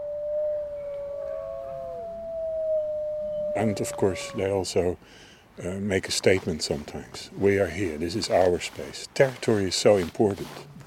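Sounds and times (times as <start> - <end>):
wolf pack howling in chorus: 0.0 - 4.7
speech: 3.6 - 10.8.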